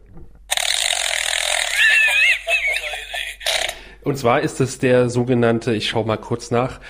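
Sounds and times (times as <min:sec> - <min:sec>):
tinny buzzing fart sound effect from a sound book toy speaker: 0:00.5 - 0:02.2, 0:03.4 - 0:03.8
faint squeaky laugh-like noises: 0:00.5 - 0:03.8
speech: 0:04.0 - 0:06.8.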